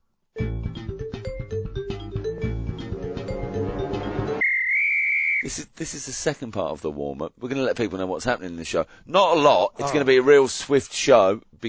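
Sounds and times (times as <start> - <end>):
busy rhythmic music: 0.4 - 4.4
umpire's whistle being blown in a shrill referee-style blast: 4.4 - 5.5
speech: 5.5 - 11.6.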